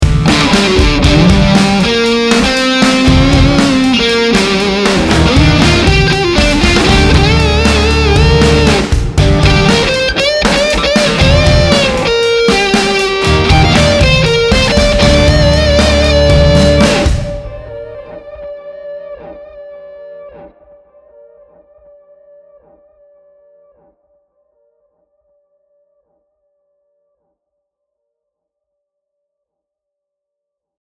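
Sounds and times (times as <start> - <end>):
lead electric guitar through amp simulation: 0.0 - 23.1.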